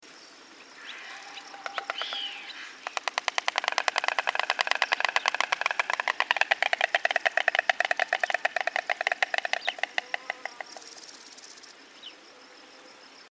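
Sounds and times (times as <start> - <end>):
white stork: 0.8 - 11.1.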